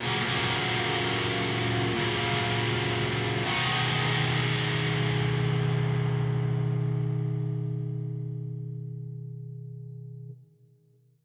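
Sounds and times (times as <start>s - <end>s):
guitar song: 0.0s - 10.4s.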